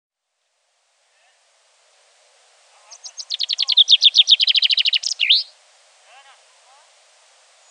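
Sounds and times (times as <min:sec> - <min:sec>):
faint lower bird call: 0:02.7 - 0:06.8
Common chaffinch Fringilla coelebs song: 0:02.8 - 0:05.6.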